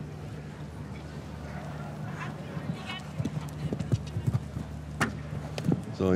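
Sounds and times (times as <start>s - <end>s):
faint voice murmuring: 0.0s - 4.8s
steady hum: 0.0s - 6.1s
horse hooves clip-clopping during a show-jumping ride: 1.6s - 6.0s.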